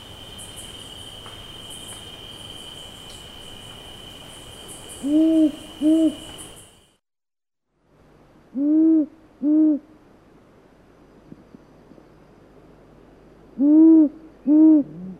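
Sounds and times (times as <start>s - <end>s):
insect buzzing: 0.0s - 6.9s
rufous owl calling in deep paired hoots: 4.9s - 6.6s, 8.5s - 10.0s, 13.6s - 15.1s.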